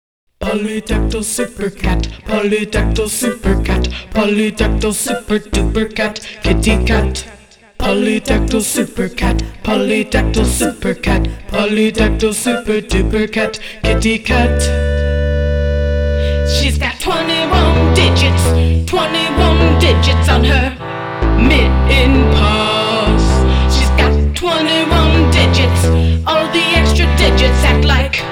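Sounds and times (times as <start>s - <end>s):
vocals: 0.3s - 28.2s
bass synth: 1.8s - 7.4s, 10.2s - 11.4s, 12.9s - 28.2s.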